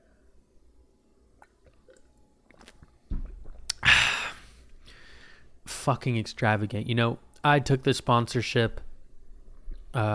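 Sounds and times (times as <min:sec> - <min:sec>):
lip smacks: 0:01.4 - 0:03.8
soft wet slurping of water: 0:01.4 - 0:03.8
heavier gulp of water as it's swallowed: 0:01.4 - 0:04.1
speech: 0:05.8 - 0:08.9, 0:10.0 - 0:10.1.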